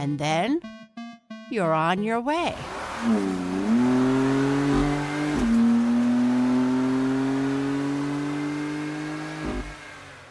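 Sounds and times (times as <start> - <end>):
speech: 0.0 - 0.8, 1.5 - 4.2
car engine revving: 2.5 - 10.2.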